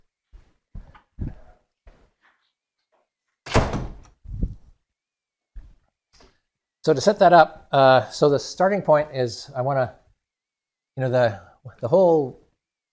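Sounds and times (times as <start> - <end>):
door swinging shut with a loud close thunk: 3.5 - 4.1
speech: 6.8 - 10.0, 11.0 - 12.4.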